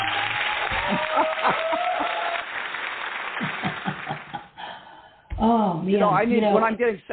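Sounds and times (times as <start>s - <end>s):
canned applause sound effect of crowd clapping: 0.0s - 4.6s
laughter: 0.8s - 2.4s, 3.4s - 4.6s
speech: 5.4s - 7.1s.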